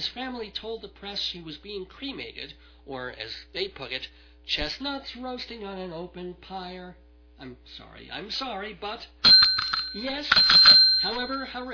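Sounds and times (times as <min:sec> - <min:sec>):
speech: 0:00.0 - 0:09.3, 0:09.9 - 0:11.7
bell ding marking a bad pun: 0:09.2 - 0:11.7.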